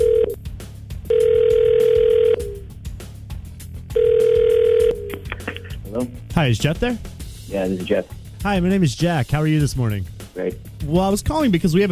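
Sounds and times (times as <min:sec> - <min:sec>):
long steady telephone ringback tones while placing a call: 0:00.0 - 0:00.4, 0:01.1 - 0:02.6, 0:03.9 - 0:05.1
speech: 0:06.4 - 0:11.9.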